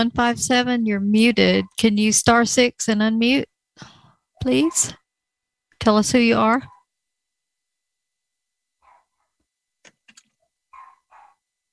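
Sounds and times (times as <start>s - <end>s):
speech: 0.0s - 5.0s, 5.8s - 6.7s
Shorkie dog, Shih Tzu and Yorkie cross, yapping and barking: 8.8s - 9.3s, 10.7s - 11.4s.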